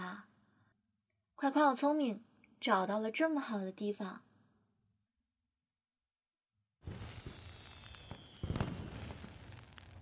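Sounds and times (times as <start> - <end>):
speech: 1.4 - 4.3
fireworks bursting in the sky: 6.8 - 10.0
thin rising firework whistle: 7.0 - 9.2.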